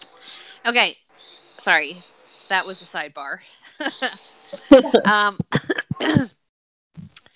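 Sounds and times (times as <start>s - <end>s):
speech: 0.6s - 6.4s
laughter: 3.7s - 6.1s
harsh coughs and throat-clearing with raspy voiced gasps: 4.6s - 6.3s.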